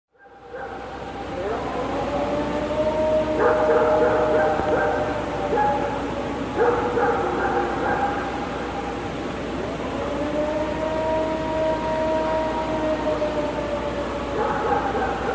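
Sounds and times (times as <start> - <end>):
dog barking in agitated bursts: 0.2 - 0.9, 3.4 - 6.0, 6.6 - 8.4, 14.4 - 15.3
long wavering siren-like howl: 0.2 - 15.3.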